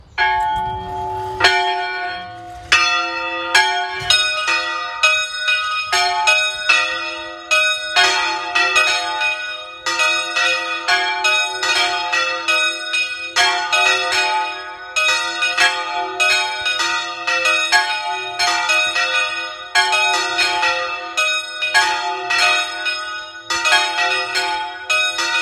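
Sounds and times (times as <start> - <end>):
bells ringing: 0.0 - 25.4.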